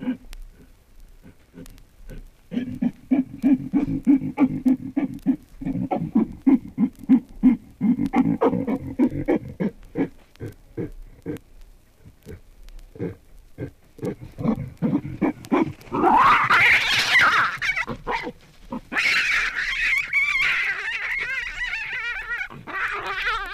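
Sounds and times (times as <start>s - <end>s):
baboon grunting in low pulsed grunts: 0.0s - 11.4s, 12.1s - 23.5s
baboon giving a loud rising squeal and harsh screeching: 15.9s - 23.5s.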